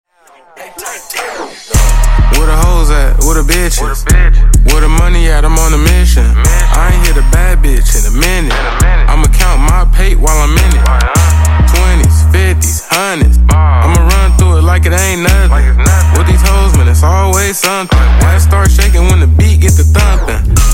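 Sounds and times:
beatbox intro and outro music: 0.2s - 20.7s.

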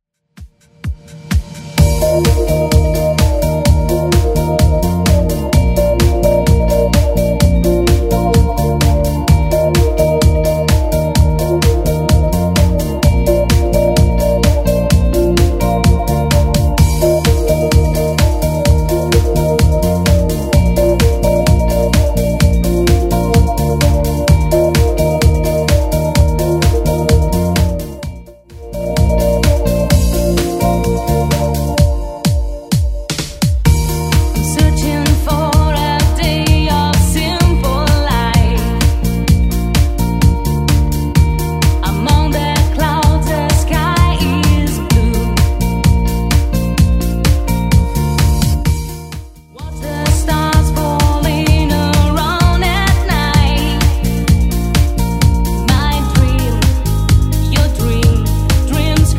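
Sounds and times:
DJ-friendly electronic dance music: 0.3s - 59.1s.

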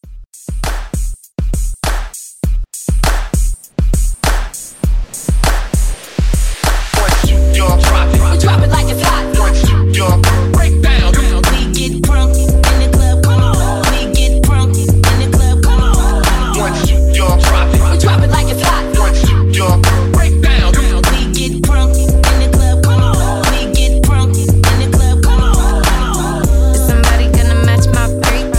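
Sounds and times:
drums: 0.0s - 28.4s.

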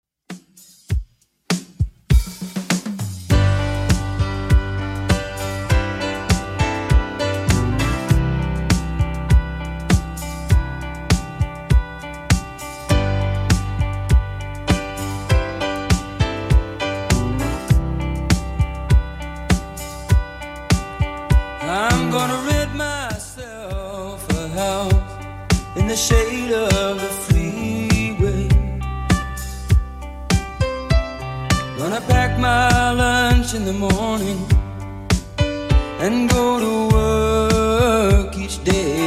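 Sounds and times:
70s-style drum beat at 100 bpm: 0.2s - 39.0s.

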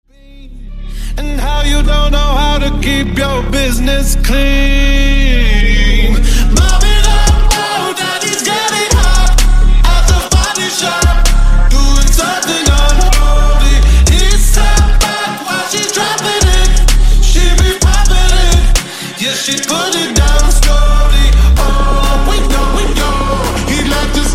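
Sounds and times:
music beat at 128 BPM: 1.2s - 24.3s.

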